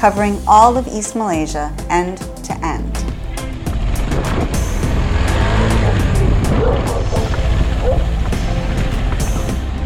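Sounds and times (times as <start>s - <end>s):
speech: 0.0s - 2.9s
road rumble: 2.6s - 9.8s
motorcycle engine droning while riding: 2.9s - 9.8s
wind: 3.2s - 9.8s.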